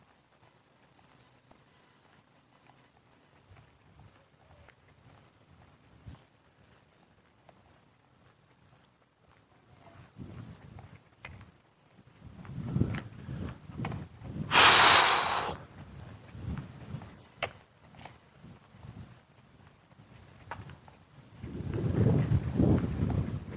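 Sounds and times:
strong breeze gusting across the microphone: 12.2 - 17.1, 21.4 - 23.5.

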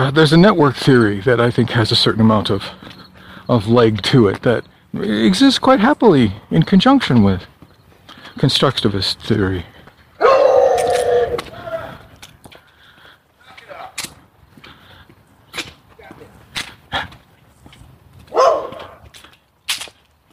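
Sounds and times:
speech: 0.0 - 7.5, 8.4 - 9.7
dog barking: 10.2 - 11.3, 18.3 - 19.0.

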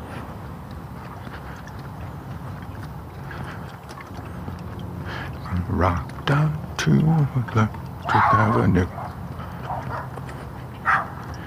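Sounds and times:
low rumble: 0.0 - 11.4
dogs barking at each other outdoors: 1.0 - 6.2, 7.9 - 11.4
speech: 5.6 - 9.0.

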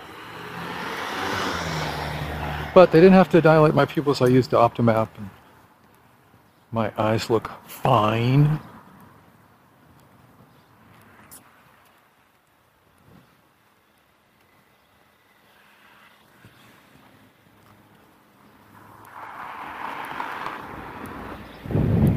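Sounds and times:
cold north wind blowing across the microphone on an overcast day: 0.0 - 11.8, 18.7 - 22.1
speech: 2.8 - 5.4, 6.7 - 8.7.

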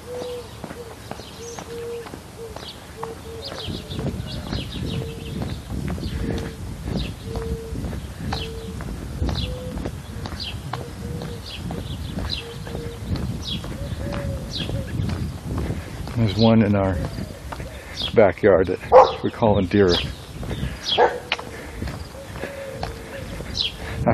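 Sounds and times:
doves on ridge poles cooing to each other: 0.0 - 18.1, 18.9 - 24.1
rumbling outdoor background: 0.0 - 24.1
smaller birds chirping: 0.0 - 24.1
speech: 16.4 - 17.2, 18.2 - 20.2.

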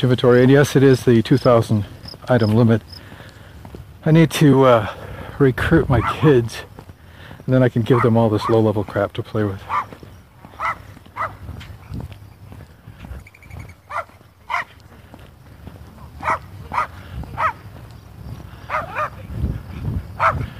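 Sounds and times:
speech: 0.0 - 3.0, 4.0 - 6.7, 7.5 - 10.0
small dogs yapping outdoors: 5.9 - 6.3, 7.9 - 8.7, 9.6 - 12.1, 13.6 - 15.0, 16.0 - 17.7, 18.5 - 20.5.

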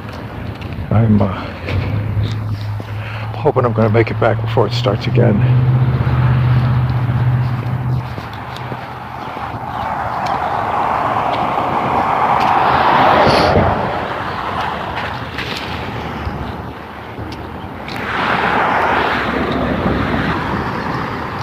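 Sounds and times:
outdoor morning road traffic rumble on a damp foggy day: 0.0 - 21.4
vehicles passing on a wet road: 0.0 - 21.4
speech: 0.9 - 1.9, 3.4 - 5.8
tires hissing on a wet road after rain: 2.4 - 3.3, 5.2 - 16.2, 17.9 - 21.4.

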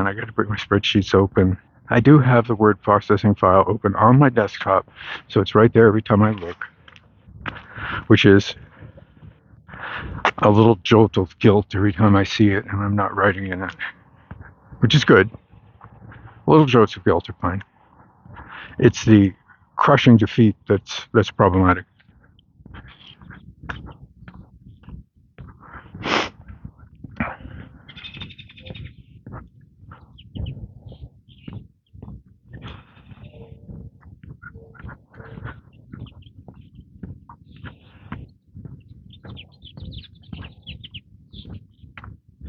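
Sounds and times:
speech: 0.0 - 6.7, 7.4 - 8.6, 9.8 - 14.0, 14.8 - 15.4, 16.0 - 17.7, 18.4 - 21.9
birds chirping: 0.0 - 42.4
sharper bird squawks: 27.8 - 29.2, 32.5 - 41.7.

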